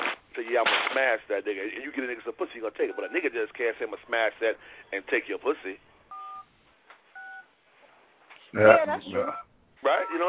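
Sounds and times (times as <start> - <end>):
speech: 0.6 - 5.9, 8.5 - 10.2
touch-tone beeps of a telephone number being dialed: 6.1 - 6.5, 7.2 - 7.5.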